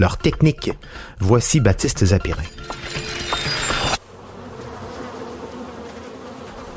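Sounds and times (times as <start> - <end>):
speech: 0.0 - 2.8
mosquito whine: 3.1 - 6.7.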